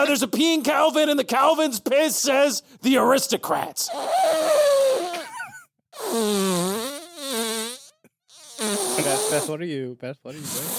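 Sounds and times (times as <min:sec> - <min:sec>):
speech: 0:00.0 - 0:05.2, 0:06.0 - 0:07.0, 0:08.6 - 0:10.7
person imitating a fart with mouth: 0:03.9 - 0:05.4, 0:06.0 - 0:09.5, 0:10.4 - 0:10.7.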